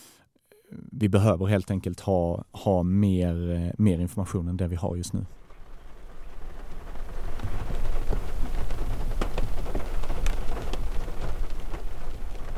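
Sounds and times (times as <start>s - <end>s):
speech: 1.0s - 5.4s
steady rain pattering against a car window at night: 5.2s - 12.5s.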